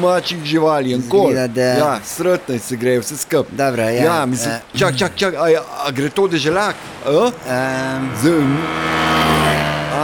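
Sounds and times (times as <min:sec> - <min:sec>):
speech: 0:00.0 - 0:09.1
motorcycle engine idling with a quick rev: 0:07.4 - 0:10.0.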